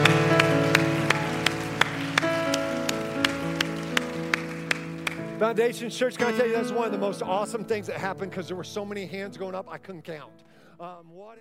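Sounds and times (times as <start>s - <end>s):
church crowd clapping in time: 0.0s - 6.4s
sustained organ-like keyboard chords: 0.0s - 10.5s
speech: 5.4s - 11.3s.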